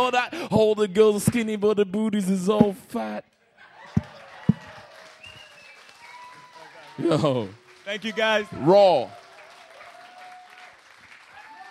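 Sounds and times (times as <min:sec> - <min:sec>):
speech: 0:00.0 - 0:03.3, 0:07.0 - 0:09.2
audience applause: 0:03.8 - 0:11.6
faint tonal whistles or cheers: 0:04.1 - 0:11.6.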